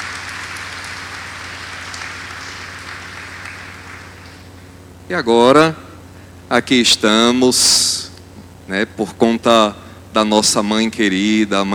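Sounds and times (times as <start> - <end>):
audience applauding at a Sunday Eucharist: 0.0 - 4.5
speech: 5.1 - 5.8, 6.5 - 8.1, 8.7 - 11.7.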